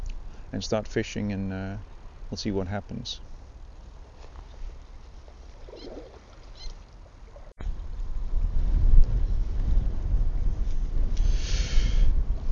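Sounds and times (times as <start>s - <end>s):
faint water sounds: 0.0s - 8.1s
speech: 0.5s - 3.3s
wind blowing along a rocky seaweed-covered coast: 7.2s - 12.5s.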